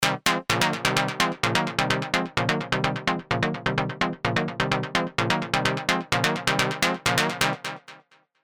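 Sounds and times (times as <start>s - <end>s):
synth loop in C: 0.0s - 7.8s.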